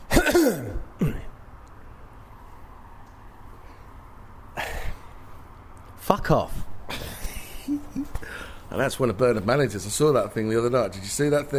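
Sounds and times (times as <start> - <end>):
quiet hum: 0.0 - 11.5
throat clearing: 0.1 - 1.4
speech: 0.4 - 1.2, 6.2 - 6.6, 8.7 - 11.5.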